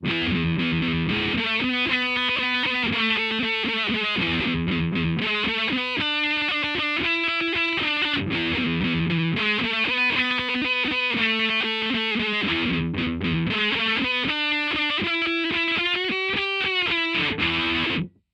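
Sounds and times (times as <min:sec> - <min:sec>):
distorted guitar with auto-wah effect: 0:00.0 - 0:18.2.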